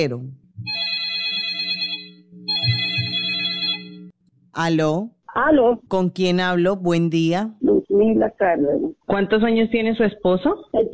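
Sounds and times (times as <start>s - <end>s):
speech: 0.0s - 0.4s, 4.6s - 10.9s
telephone ringing for an incoming call: 0.6s - 4.2s.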